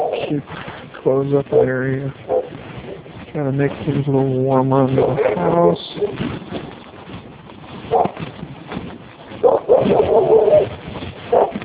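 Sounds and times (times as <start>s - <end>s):
faint outdoor noise: 0.0s - 11.6s
speech: 0.3s - 2.3s, 3.3s - 6.2s
dog barking and whining: 1.5s - 2.5s, 5.0s - 5.6s, 7.9s - 8.2s, 9.4s - 10.7s, 11.3s - 11.6s.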